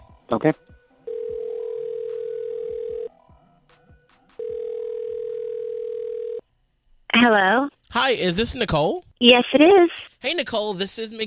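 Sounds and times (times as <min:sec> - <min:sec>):
speech: 0:00.3 - 0:00.8, 0:07.2 - 0:11.2
telephone dialing tones before a call: 0:01.1 - 0:03.1, 0:04.4 - 0:06.4.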